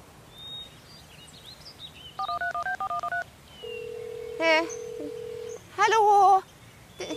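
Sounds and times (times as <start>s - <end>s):
faint noise: 0.0s - 7.1s
telephone keypad dialing tones: 2.2s - 5.5s.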